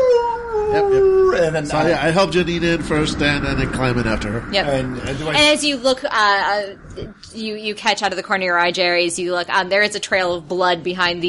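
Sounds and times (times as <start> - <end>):
dogs howling in the back of an SUV: 0.0 - 1.7
speech: 1.4 - 11.2.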